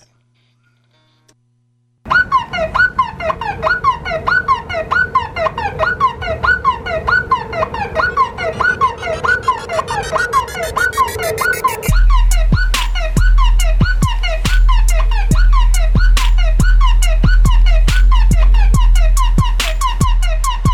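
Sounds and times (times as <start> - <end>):
car alarm whooping: 2.1 - 20.7.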